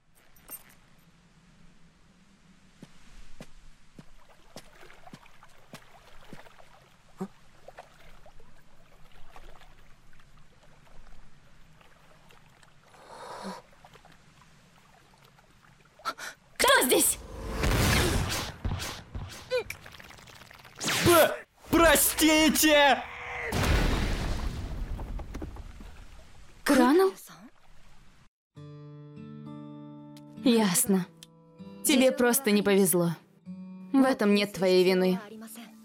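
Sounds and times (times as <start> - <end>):
water splashing and sloshing: 3.4 - 28.3
water dripping: 4.0 - 16.6, 19.2 - 20.8
speech: 22.3 - 23.1, 32.2 - 33.2, 34.0 - 35.3.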